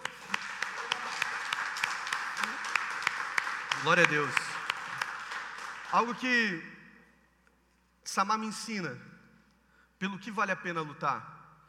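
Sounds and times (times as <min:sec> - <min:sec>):
audience applauding: 0:00.0 - 0:06.4
speech: 0:03.8 - 0:04.4, 0:05.9 - 0:06.8, 0:08.1 - 0:09.1, 0:10.0 - 0:11.4.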